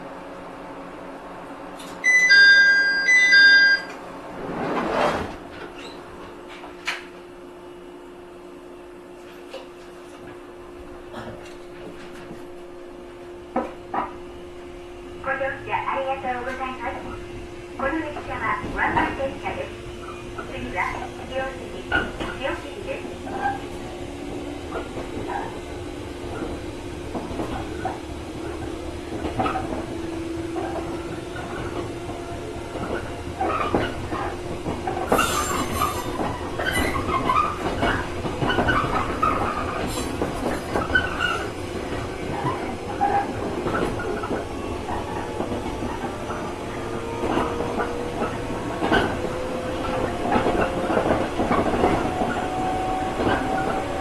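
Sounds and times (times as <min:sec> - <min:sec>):
train: 0:00.0 - 0:53.9.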